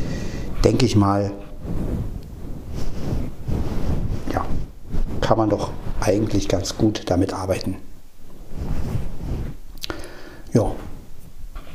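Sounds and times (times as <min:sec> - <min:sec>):
low rumbling wind buffeting a microphone: 0:00.0 - 0:07.2, 0:08.4 - 0:09.7
speech: 0:00.6 - 0:02.1, 0:05.3 - 0:07.9.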